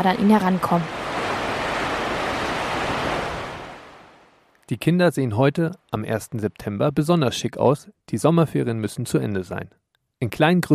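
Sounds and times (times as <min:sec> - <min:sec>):
speech: 0:00.0 - 0:01.0, 0:04.7 - 0:10.7
river water rushing: 0:00.2 - 0:04.4.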